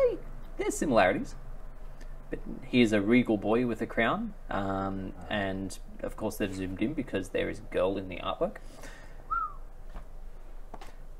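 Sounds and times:
speech: 0:00.7 - 0:01.4, 0:02.3 - 0:09.0
person wolf-whistling: 0:09.3 - 0:09.6.

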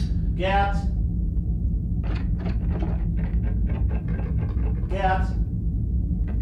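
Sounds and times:
constant low rumble: 0:00.0 - 0:06.4
speech: 0:00.4 - 0:00.9
repeated scraping dragging noise in a corridor: 0:02.5 - 0:05.1.

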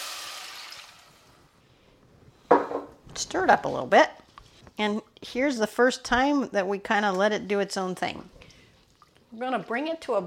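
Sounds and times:
vegetable broth pouring into a pan of lentils: 0:00.0 - 0:01.4
speech: 0:03.2 - 0:04.2, 0:04.8 - 0:08.4, 0:09.4 - 0:10.2.

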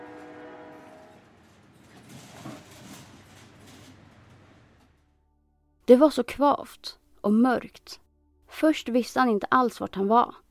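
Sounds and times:
train rattling along the tracks: 0:00.0 - 0:05.0
speech: 0:05.9 - 0:10.4.

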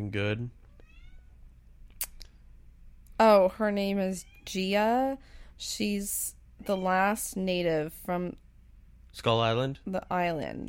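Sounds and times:
speech: 0:00.1 - 0:00.6, 0:03.2 - 0:08.4, 0:09.2 - 0:10.6
cat meowing: 0:00.7 - 0:01.4, 0:06.6 - 0:07.2.

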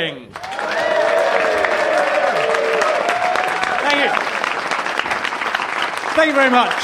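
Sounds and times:
speech: 0:00.0 - 0:00.5, 0:06.2 - 0:06.8
audience applause at a live comedy show: 0:00.4 - 0:06.8
crowd noise: 0:00.4 - 0:06.8.

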